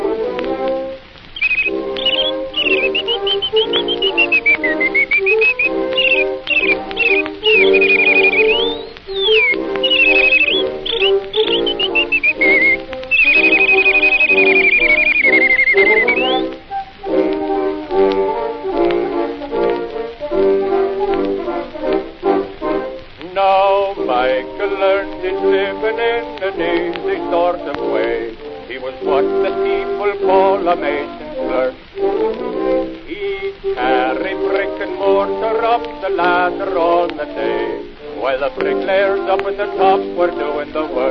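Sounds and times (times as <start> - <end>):
full instrumental backing music: 0.0 - 41.0
person whistling a lilting tune: 1.4 - 17.2.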